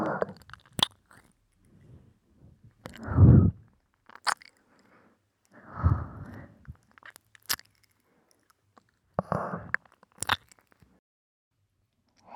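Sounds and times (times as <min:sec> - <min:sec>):
tongue licking and sucking sweat from a face and neck: 0:00.1 - 0:01.4, 0:02.9 - 0:03.2, 0:04.1 - 0:04.9, 0:06.7 - 0:08.9, 0:09.7 - 0:10.7.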